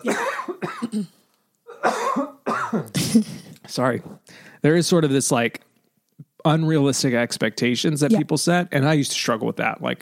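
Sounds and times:
person coughing harshly: 0:00.0 - 0:03.6
speech: 0:00.9 - 0:01.2, 0:03.1 - 0:05.6, 0:06.4 - 0:10.0.

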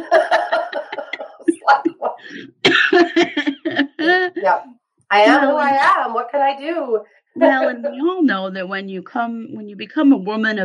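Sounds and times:
person laughing: 0:00.0 - 0:04.6
speech: 0:04.4 - 0:10.6.

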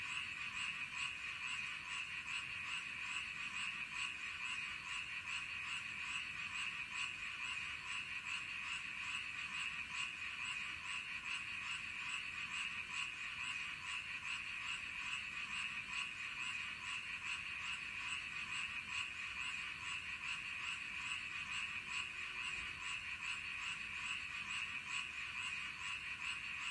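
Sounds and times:
toads trilling in a chorus: 0:00.0 - 0:26.7.

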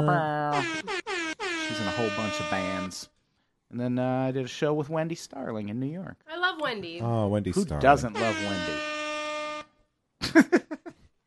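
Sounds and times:
speech: 0:00.0 - 0:01.0, 0:01.7 - 0:08.9, 0:10.3 - 0:10.7
air horn blast: 0:00.5 - 0:03.1, 0:07.8 - 0:09.7.

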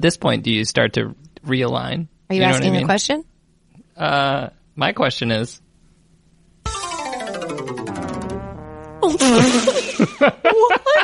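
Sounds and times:
speech: 0:00.0 - 0:03.3, 0:04.0 - 0:05.6, 0:09.1 - 0:11.0
fart-like buzzing sputters: 0:08.3 - 0:09.8.

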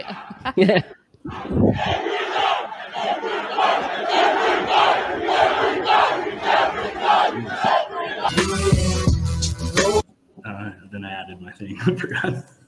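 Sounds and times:
large crowd chanting rhythmically: 0:00.0 - 0:00.5, 0:01.2 - 0:09.0
laughter: 0:00.0 - 0:08.3, 0:11.8 - 0:12.5
speech: 0:00.1 - 0:02.4, 0:11.0 - 0:12.6.

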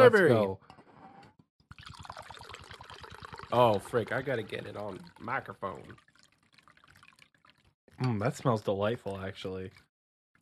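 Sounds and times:
speech: 0:00.0 - 0:00.6, 0:03.5 - 0:06.1, 0:08.0 - 0:09.8
drink being poured: 0:01.7 - 0:09.9.

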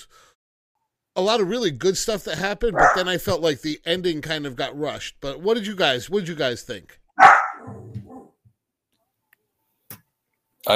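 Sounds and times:
speech: 0:01.2 - 0:07.0
dog barking: 0:02.8 - 0:03.1, 0:07.2 - 0:08.3.

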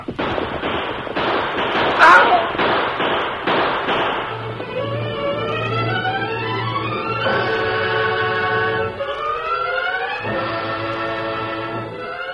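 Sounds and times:
gunshots out in back of a restaurant: 0:00.0 - 0:10.6
rising whining tones: 0:04.2 - 0:12.3.

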